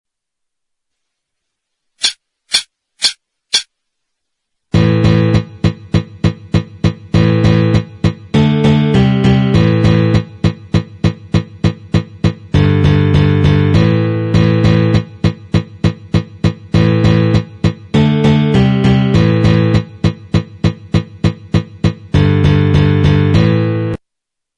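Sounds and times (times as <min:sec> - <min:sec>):
acoustic guitar playing: 0:04.7 - 0:24.0.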